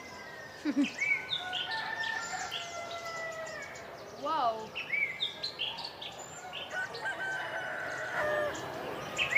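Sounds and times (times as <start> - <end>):
small birds chirping: 0.0 - 9.3
roosters crowing outdoors: 0.1 - 3.9, 6.4 - 9.3
speech: 0.6 - 1.2, 4.2 - 5.0.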